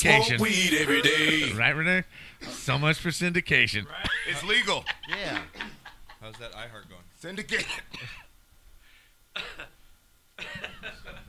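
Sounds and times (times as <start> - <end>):
speech: 0.0 - 8.2
faint low hum: 0.0 - 11.2
person coughing harshly: 7.6 - 8.3, 9.4 - 9.8.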